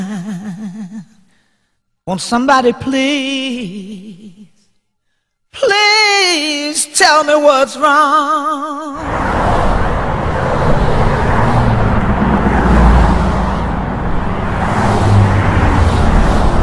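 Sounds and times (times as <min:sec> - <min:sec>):
speech: 0:02.1 - 0:03.9, 0:05.6 - 0:09.6
car engine and road rumble driving toward the city: 0:09.0 - 0:16.6.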